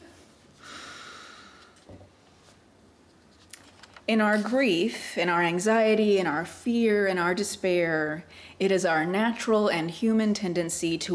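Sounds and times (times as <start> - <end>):
slow breathing during a guided calm-breathing moment: 0.6 - 1.8
speech: 4.1 - 11.1.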